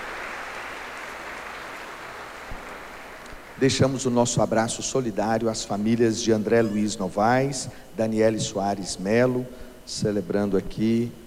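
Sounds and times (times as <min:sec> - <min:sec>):
crowd applauding for birthday celebrants: 0:00.0 - 0:04.1
speech: 0:03.6 - 0:11.2.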